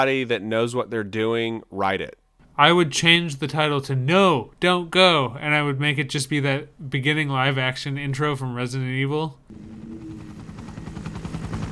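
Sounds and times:
speech: 0.0s - 9.8s
helicopter rotor chopping: 9.5s - 11.7s.

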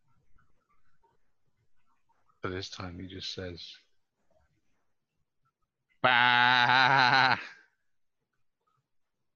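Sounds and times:
speech: 2.4s - 3.8s, 6.0s - 7.5s
human voice imitating a sheep bleat: 6.0s - 7.6s.

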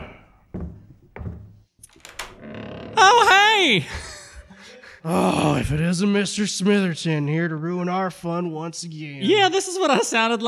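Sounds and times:
solid thuds: 0.0s - 1.6s
door latch and handle being worked as a door opens: 1.8s - 2.5s
speech: 3.0s - 4.1s, 5.0s - 10.4s.

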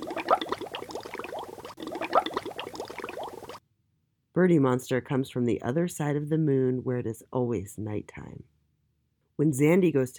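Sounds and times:
bubbles blown through bath water: 0.0s - 3.6s
speech: 4.4s - 8.5s, 9.4s - 10.1s.

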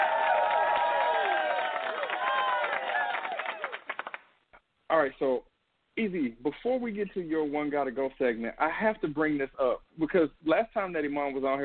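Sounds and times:
crowd applauding and cheering with whoops: 0.0s - 4.3s
speech: 5.0s - 11.6s.

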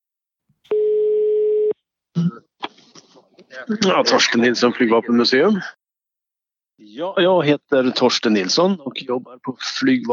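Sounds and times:
telephone ringing tone on an outgoing call: 0.7s - 1.8s
speech: 3.6s - 5.8s, 6.8s - 10.1s.

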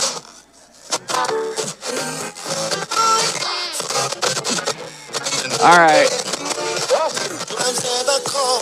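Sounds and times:
crackling analog radio static: 0.0s - 8.6s
speech: 5.6s - 6.2s.

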